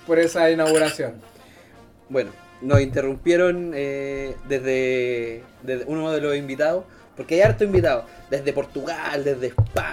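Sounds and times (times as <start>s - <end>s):
speech: 0.1s - 1.4s, 2.1s - 9.9s
glasses clinking in a toast: 0.2s - 1.1s.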